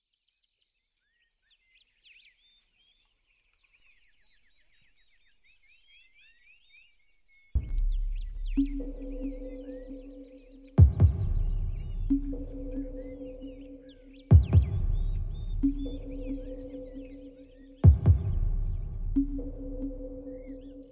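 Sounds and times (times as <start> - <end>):
chillout nature groove music with sonar: 7.5 - 20.9.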